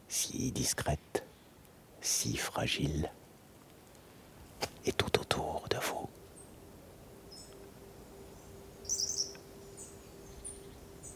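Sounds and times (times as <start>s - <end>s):
speech: 0.1s - 1.2s, 2.0s - 3.2s, 4.8s - 6.0s
light bird twittering: 7.3s - 11.1s.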